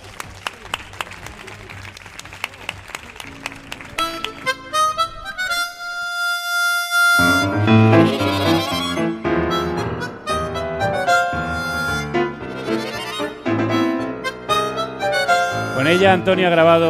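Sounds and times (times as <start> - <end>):
audience applause: 0.0 - 4.8
sustained musical tones: 3.3 - 16.8
speech: 16.1 - 16.8.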